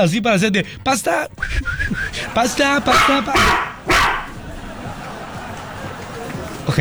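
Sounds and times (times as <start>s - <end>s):
speech: 0.0s - 3.7s
laughter: 1.1s - 6.7s
chihuahua yapping: 2.4s - 4.4s.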